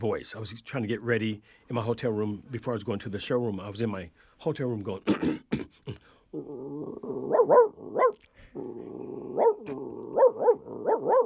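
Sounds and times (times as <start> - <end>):
speech: 0.0 - 11.2
person vocally imitating a dog barking in a hotel room: 6.4 - 11.2.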